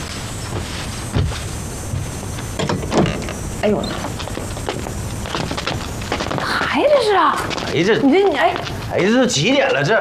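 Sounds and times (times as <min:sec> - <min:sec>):
faint noise: 0:00.0 - 0:09.9
door being opened: 0:02.6 - 0:04.1
speech: 0:03.6 - 0:04.2, 0:06.8 - 0:09.9.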